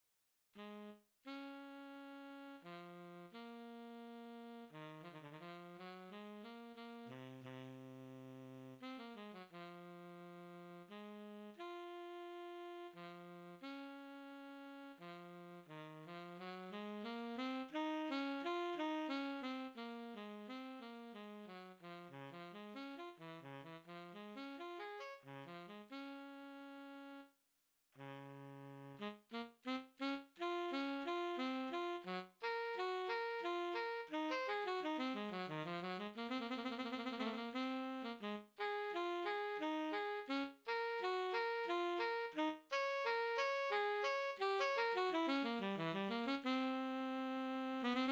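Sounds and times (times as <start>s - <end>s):
tenor saxophone: 0.6s - 27.3s, 28.0s - 48.1s.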